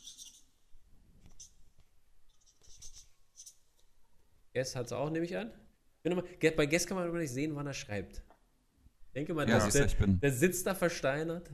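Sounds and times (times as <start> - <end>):
scratchy pen strokes on paper: 2.3 - 3.6
speech: 4.6 - 8.3, 9.2 - 11.5.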